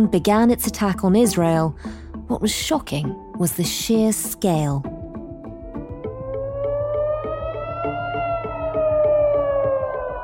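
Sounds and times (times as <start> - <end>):
speech: 0.0 - 4.9
air raid siren wailing at night: 5.6 - 10.2.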